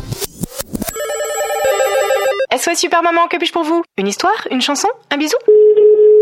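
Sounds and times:
after-sales service answering machine message: 0:00.9 - 0:02.5
telephone ringing with electronic trilling tone: 0:00.9 - 0:02.5
speech: 0:02.6 - 0:05.6.

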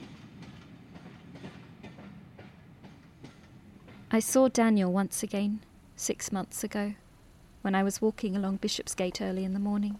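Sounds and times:
train wheels clacking over rail joints: 0:00.0 - 0:04.4
speech: 0:04.1 - 0:07.0, 0:07.6 - 0:09.9.

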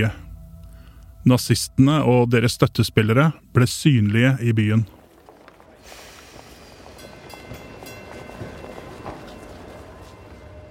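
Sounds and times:
speech: 0:00.0 - 0:00.2, 0:01.2 - 0:05.0
crowded city tram rumbling along: 0:01.3 - 0:10.6.

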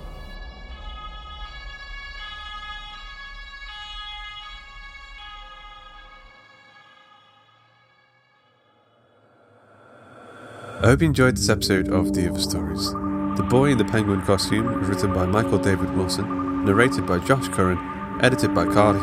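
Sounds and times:
low rumbling engine: 0:10.7 - 0:19.0
ambulance sirens wailing in a two-tone pattern: 0:10.8 - 0:19.0
speech: 0:10.8 - 0:19.0.

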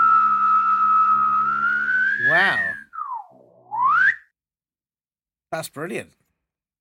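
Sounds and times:
person humming and whistling imitating an alien spacecraft: 0:00.0 - 0:04.2
speech: 0:02.3 - 0:02.7, 0:05.6 - 0:06.2.

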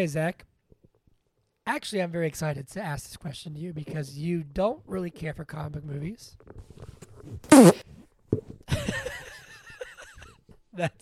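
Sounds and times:
speech: 0:00.0 - 0:00.5, 0:01.7 - 0:09.2, 0:10.8 - 0:11.0
loud brassy fart: 0:07.5 - 0:07.8
burst of laughter: 0:08.7 - 0:11.0.

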